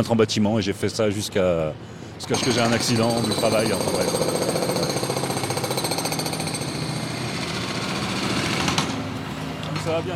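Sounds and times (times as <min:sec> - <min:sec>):
speech: 0:00.0 - 0:04.6, 0:09.8 - 0:10.1
jackhammer pounding: 0:02.2 - 0:09.1.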